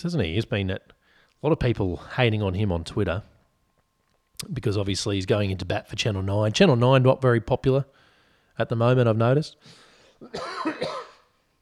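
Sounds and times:
speech: 0.0 - 3.3, 4.4 - 8.0, 8.6 - 11.0
raspy throaty cough: 9.7 - 11.4.

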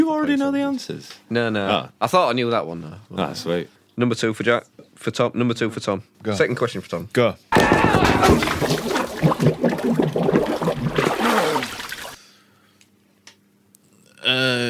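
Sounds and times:
speech: 0.0 - 9.0
water splashing and gurgling in a toilet bowl: 8.0 - 12.2.

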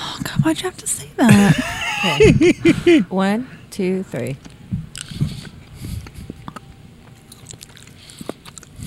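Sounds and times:
speech: 0.4 - 4.5
laughter: 1.2 - 3.1
wet chewing of jelly beans: 4.9 - 8.8.

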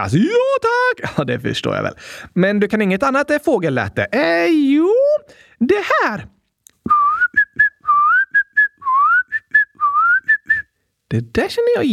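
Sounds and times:
speech: 0.0 - 6.4, 11.1 - 11.9
person whistling an ice cream van jingle: 6.9 - 10.7.

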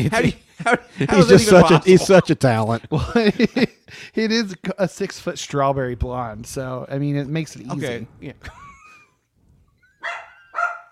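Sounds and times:
laughter: 0.0 - 3.8, 8.4 - 9.1
speech: 0.0 - 8.6
dog barking: 10.0 - 10.9.

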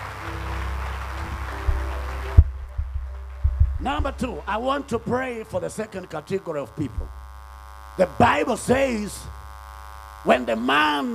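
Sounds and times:
church service audience clapping: 0.0 - 7.2
low hum: 0.0 - 10.7
speech: 3.8 - 7.2, 8.0 - 9.4, 10.2 - 11.1.

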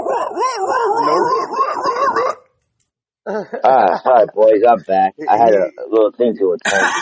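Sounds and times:
dog barking: 0.0 - 2.4
laughter: 3.3 - 6.9
speech: 3.4 - 6.9.

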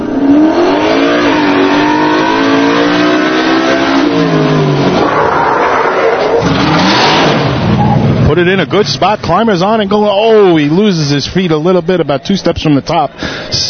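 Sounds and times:
truck engine revving: 0.0 - 9.9
speech: 8.4 - 13.6.

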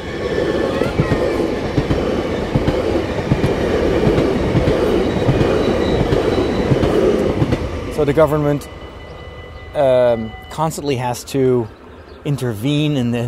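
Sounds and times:
train rumbling on rails: 0.0 - 13.2
speech: 8.0 - 8.8, 9.8 - 13.2.

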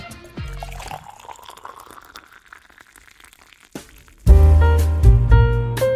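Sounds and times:
coffee pouring into a cup: 0.4 - 4.9
loud music: 4.3 - 5.8.

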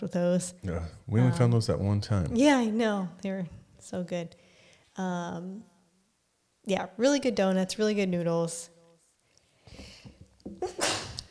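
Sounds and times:
speech: 0.0 - 4.4, 5.0 - 5.7, 6.6 - 8.7, 10.5 - 11.1
person sneezing: 10.6 - 11.2.

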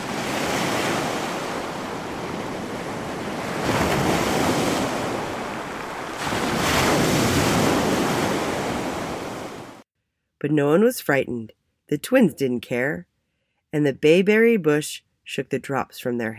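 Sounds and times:
ocean surf crashing on the shore: 0.0 - 9.8
wind: 0.0 - 9.8
speech: 10.4 - 13.1, 13.7 - 16.3.

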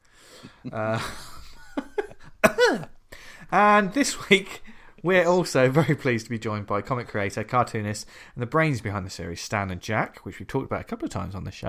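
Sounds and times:
laughter: 0.3 - 2.9
speech: 0.6 - 1.3, 3.5 - 11.6
person coughing: 2.2 - 3.0.

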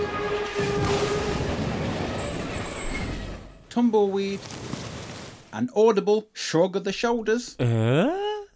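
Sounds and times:
train wreck roar with shrill metallic screeching: 0.0 - 3.7
speech: 3.8 - 4.7, 5.5 - 8.2.

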